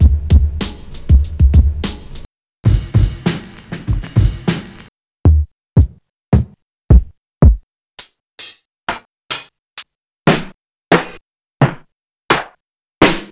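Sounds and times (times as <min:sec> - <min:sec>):
sampled drum kit: 0:00.0 - 0:07.6.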